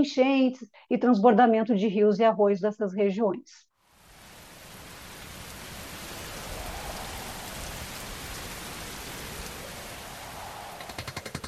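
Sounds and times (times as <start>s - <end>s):
speech: 0.0s - 3.7s
rain drops pattering on a surface: 3.8s - 11.4s
sharp rhythmic taps: 10.9s - 11.4s.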